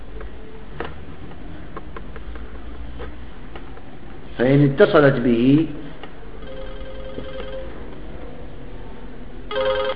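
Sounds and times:
speech: 0:04.4 - 0:05.8
electric bell ringing during a grammar lesson: 0:06.4 - 0:07.8, 0:09.5 - 0:09.9.

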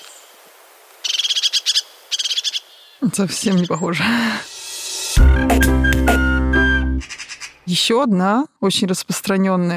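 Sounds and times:
crested tit calling with high trilled notes: 0:01.0 - 0:04.0, 0:06.2 - 0:07.7
speech: 0:03.0 - 0:04.5, 0:07.7 - 0:09.7.

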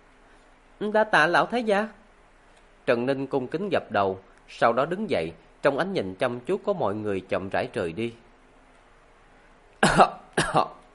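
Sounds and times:
speech: 0:00.8 - 0:02.0, 0:02.9 - 0:08.2, 0:09.8 - 0:10.8
elderly man dry coughing: 0:09.8 - 0:10.8.

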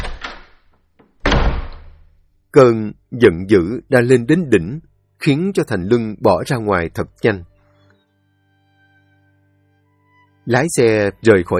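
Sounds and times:
house door slamming shut: 0:00.0 - 0:02.1
speech: 0:02.5 - 0:07.5, 0:10.4 - 0:11.5.

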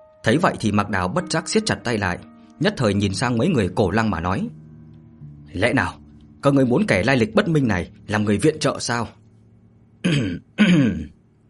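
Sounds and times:
speech: 0:00.2 - 0:04.6, 0:05.5 - 0:09.2, 0:10.0 - 0:11.1
person giving dry throat-clearing coughs: 0:10.0 - 0:11.2.

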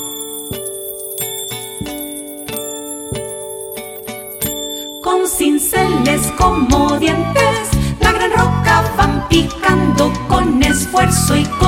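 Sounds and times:
small bells ringing in a bright musical pattern: 0:00.0 - 0:06.3
speech: 0:05.4 - 0:07.6, 0:08.7 - 0:11.6.

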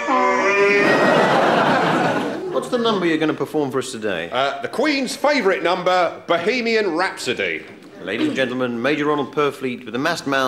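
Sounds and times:
donkey braying: 0:00.0 - 0:01.8
laughter: 0:00.0 - 0:03.4
speech: 0:02.6 - 0:10.4.

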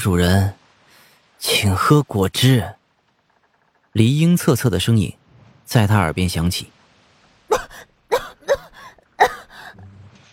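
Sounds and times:
speech: 0:00.0 - 0:00.6, 0:01.4 - 0:02.8, 0:04.0 - 0:06.8
person coughing after choking on juice: 0:07.5 - 0:09.8.

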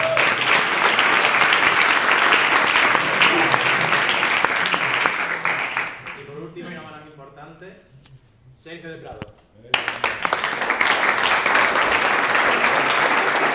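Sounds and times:
applause from the audience at a game jam event: 0:00.0 - 0:06.2, 0:09.8 - 0:13.5.

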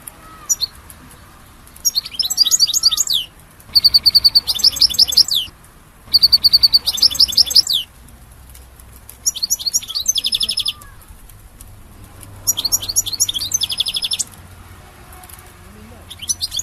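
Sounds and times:
European goldfinch song: 0:00.0 - 0:08.0, 0:08.9 - 0:14.7, 0:16.0 - 0:16.6.

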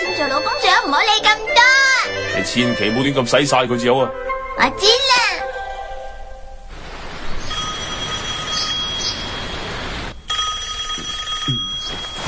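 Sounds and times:
speech: 0:00.2 - 0:01.8, 0:02.4 - 0:05.2
telephone bell ringing in a high-pitched trill: 0:07.5 - 0:12.2.

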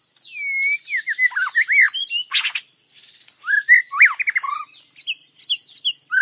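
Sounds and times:
white-rumped shama melodious whistled song: 0:00.1 - 0:02.4, 0:03.4 - 0:06.2.

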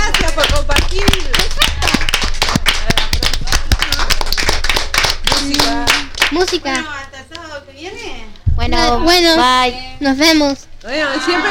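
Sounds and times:
applause of many hands clapping after a joke: 0:00.0 - 0:07.0
speech: 0:06.4 - 0:07.1, 0:08.7 - 0:11.4.

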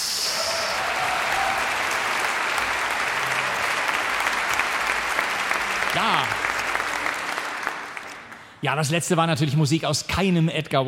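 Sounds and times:
concert audience applause for a harpist: 0:00.0 - 0:08.6
speech: 0:08.6 - 0:10.8.

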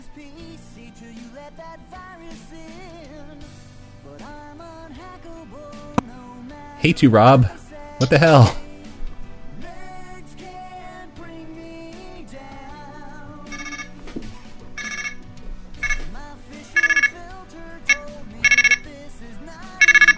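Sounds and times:
speech: 0:00.2 - 0:08.6
cell phone ringtone with busy electronic melody: 0:13.5 - 0:14.0, 0:14.8 - 0:15.2, 0:15.8 - 0:17.3, 0:17.9 - 0:19.0, 0:19.8 - 0:20.1.

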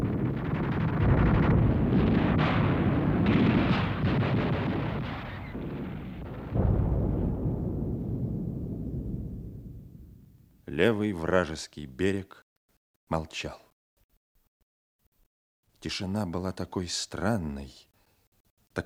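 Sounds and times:
Soviet artillery barrage pounding the left bank of the Neva: 0:00.0 - 0:10.4
speech: 0:10.8 - 0:12.4, 0:13.1 - 0:13.6, 0:15.8 - 0:17.9.

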